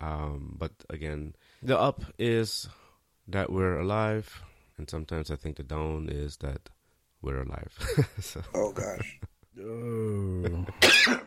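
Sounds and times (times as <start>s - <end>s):
speech: 0.0s - 11.2s
person groaning: 8.6s - 10.8s
single harsh dry cough: 10.8s - 11.2s.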